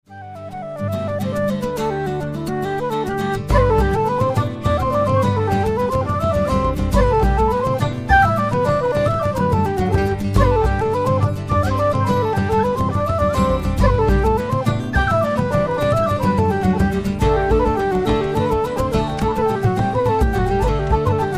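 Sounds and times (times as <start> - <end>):
flute: 0.0 - 21.3
bodhran: 0.1 - 21.3
whistle: 0.1 - 21.3.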